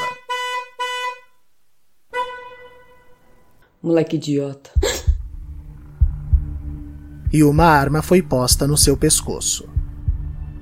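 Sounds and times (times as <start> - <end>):
car alarm in a parking lot set off by a bicycle: 0.0 - 1.4, 2.1 - 3.5
speech: 3.8 - 4.9, 7.3 - 9.8.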